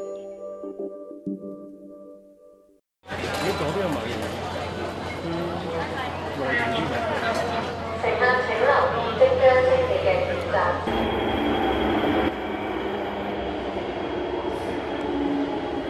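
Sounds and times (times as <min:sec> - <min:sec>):
voices of crowds boarding a train: 0:03.1 - 0:10.9
train at a station departing: 0:03.1 - 0:15.8.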